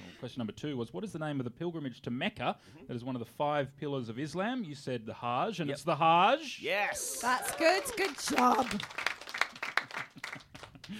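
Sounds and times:
speech: 0:00.2 - 0:09.1
faint applause sound effect after a quiz answer: 0:07.1 - 0:10.9.

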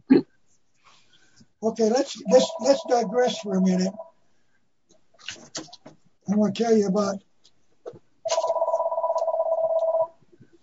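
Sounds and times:
speech: 0:01.6 - 0:04.1, 0:06.3 - 0:07.3
telephone ringing with an electronic trill: 0:01.9 - 0:04.2, 0:08.3 - 0:10.2.

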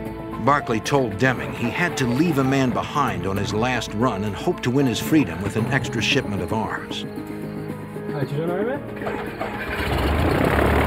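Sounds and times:
speech: 0:00.4 - 0:07.3, 0:08.2 - 0:10.4
airplane engine starting up on a runway: 0:08.9 - 0:10.8.

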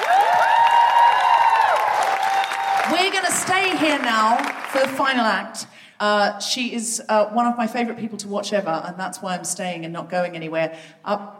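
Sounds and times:
audience at a live comedy show clapping: 0:00.0 - 0:05.1
speech: 0:02.9 - 0:11.3.

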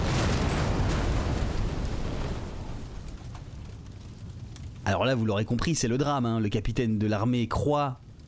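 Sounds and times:
bridge blowing up in a massive explosion: 0:00.0 - 0:05.6
speech: 0:04.9 - 0:08.0.

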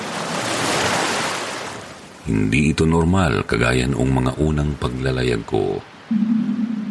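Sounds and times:
strong waves hitting a boat: 0:00.0 - 0:02.2
speech: 0:02.3 - 0:06.5.

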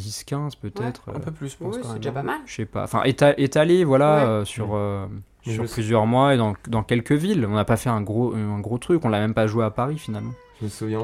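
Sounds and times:
speech: 0:00.0 - 0:11.0
cat meowing: 0:09.8 - 0:11.0.

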